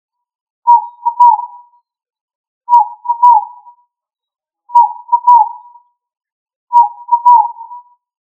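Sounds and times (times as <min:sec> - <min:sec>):
pigeon cooing: 0:00.7 - 0:01.5, 0:02.7 - 0:03.5, 0:04.8 - 0:05.6, 0:06.8 - 0:07.8.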